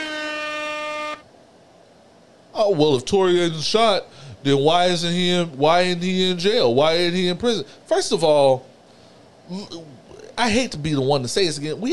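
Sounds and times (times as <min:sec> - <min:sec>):
loud sustained brassy buzzing air horn blast: 0:00.0 - 0:01.3
quiet hiss: 0:00.0 - 0:11.9
speech: 0:02.6 - 0:08.7, 0:09.5 - 0:11.9.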